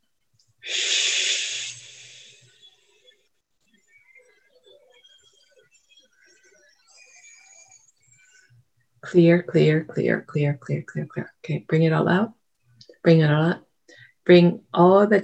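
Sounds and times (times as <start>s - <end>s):
faint sounds: 0.0s - 15.2s
deep breath in and out during a guided release exercise: 0.6s - 2.6s
speech: 9.1s - 12.4s, 13.0s - 15.2s.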